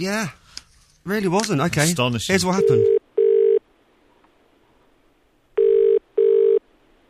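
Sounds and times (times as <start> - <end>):
speech: 0.0 - 0.4, 1.0 - 3.0
telephone ringing with an electronic buzzing tone: 2.6 - 3.6, 5.6 - 6.6.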